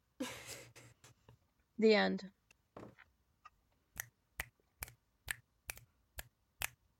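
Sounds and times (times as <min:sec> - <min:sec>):
speech: 0:01.8 - 0:02.4
sharp finger snaps: 0:04.0 - 0:06.8.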